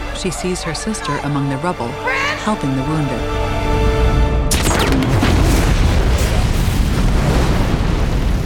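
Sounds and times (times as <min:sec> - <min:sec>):
speech: 0:00.2 - 0:03.7
bomb bursting overhead amid rubble: 0:04.5 - 0:08.4.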